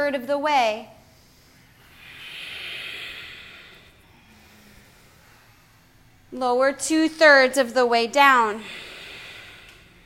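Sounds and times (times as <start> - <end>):
speech: 0.0 - 1.0, 6.3 - 8.8
deep exhale during a yoga exercise: 1.0 - 6.3, 8.6 - 10.0.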